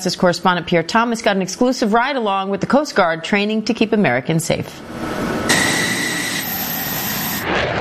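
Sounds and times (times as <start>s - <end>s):
speech: 0.0s - 5.7s
F-16 fighter jet engine roaring on takeoff: 4.8s - 7.8s.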